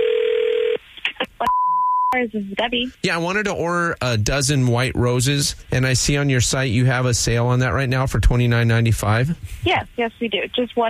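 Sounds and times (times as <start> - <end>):
telephone call tones while placing a phone call: 0.0 - 0.8
high unbroken telephone beep: 1.4 - 2.2
speech: 2.1 - 10.8.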